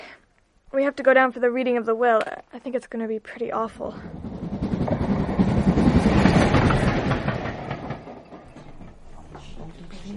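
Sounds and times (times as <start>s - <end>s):
speech: 0.7s - 4.2s
train wheels clickety-clack on rails: 3.8s - 9.7s.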